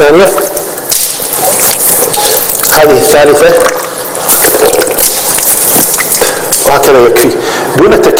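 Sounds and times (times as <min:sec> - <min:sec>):
speech: 0:00.0 - 0:00.6, 0:02.8 - 0:03.8, 0:06.8 - 0:08.1
water splashing as a face is washed by hand during ablution: 0:00.4 - 0:06.9.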